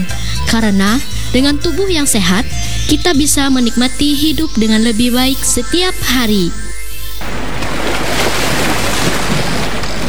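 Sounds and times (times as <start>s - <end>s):
speech: 0.0s - 6.7s
gusty wind: 7.2s - 10.0s
ocean waves washing onto a beach: 7.2s - 10.0s.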